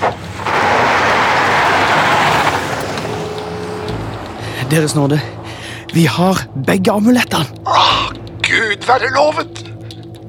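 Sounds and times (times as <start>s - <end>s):
minibus engine revving and speeding away from parking lot: 0.0s - 6.6s
tires hissing: 0.0s - 10.2s
speech: 4.7s - 7.9s, 8.9s - 9.7s.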